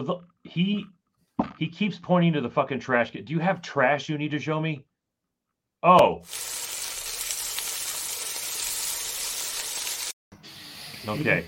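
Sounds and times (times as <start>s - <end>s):
speech: 0.0s - 4.9s, 5.8s - 6.6s, 11.0s - 11.4s
food sizzling while frying in a hot pan: 6.2s - 11.4s.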